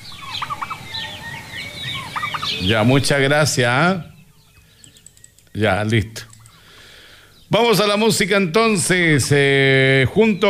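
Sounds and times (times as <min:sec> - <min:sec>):
duck peeping: 0:00.0 - 0:08.9
speech: 0:02.6 - 0:04.1, 0:05.6 - 0:06.2, 0:07.5 - 0:10.4.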